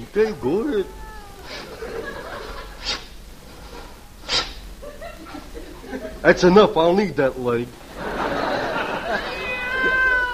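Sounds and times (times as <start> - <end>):
speech: 0.0 - 2.1, 5.9 - 7.8
cat meowing outside: 0.4 - 1.8, 9.2 - 10.3
laughter: 1.4 - 2.9, 4.8 - 6.3, 7.8 - 10.3.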